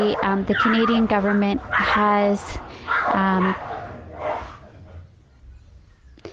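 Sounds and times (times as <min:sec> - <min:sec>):
speech: 0:00.0 - 0:03.7
dog yelping: 0:00.0 - 0:04.7
dogs barking in a fight: 0:00.0 - 0:06.0.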